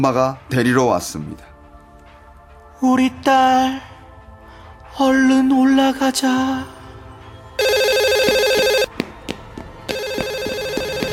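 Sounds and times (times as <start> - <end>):
speech: 0.0 - 1.5, 2.8 - 3.9, 5.0 - 6.8
phone ringing with a bright electronic tone: 7.6 - 8.9, 9.9 - 11.1.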